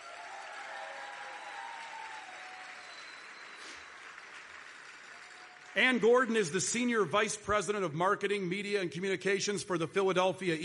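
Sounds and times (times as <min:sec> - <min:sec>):
audience applauding and cheering: 0:00.0 - 0:06.4
speech: 0:05.8 - 0:10.6.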